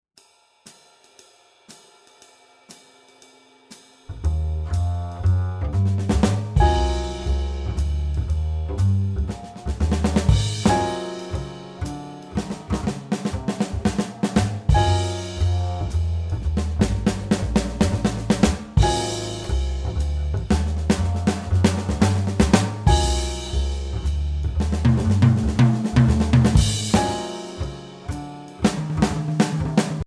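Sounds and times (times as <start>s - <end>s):
jazz sixteenth-note swing music: 4.1s - 30.0s.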